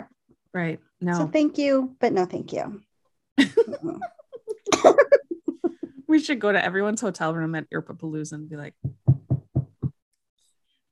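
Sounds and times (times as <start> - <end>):
speech: 0.0 - 4.2, 6.1 - 8.9
laughter: 3.4 - 6.0
knocking on a door: 8.8 - 10.0.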